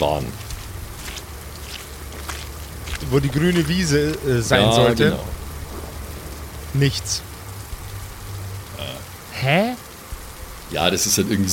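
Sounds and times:
speech: 0.0 - 0.5, 3.0 - 5.4, 6.7 - 7.3, 9.4 - 9.8, 10.7 - 11.5
soft footsteps crunching: 0.0 - 6.2
steady low rumble: 0.0 - 9.2.

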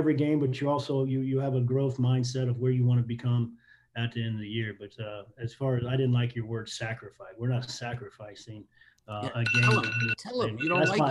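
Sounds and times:
speech: 0.0 - 11.0
phone wake-up alarm ringing with a repeating electronic tone: 9.3 - 11.0.

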